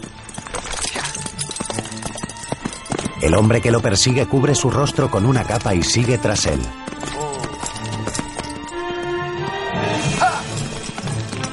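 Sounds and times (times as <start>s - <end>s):
horse hooves clip-clopping as a rider travels among trees: 0.0s - 11.5s
speech: 3.2s - 7.2s.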